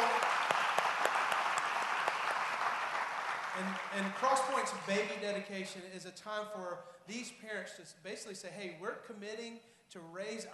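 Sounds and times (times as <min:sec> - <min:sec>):
crowd clapping for families at a baby dedication: 0:00.0 - 0:05.2
speech: 0:03.6 - 0:10.5.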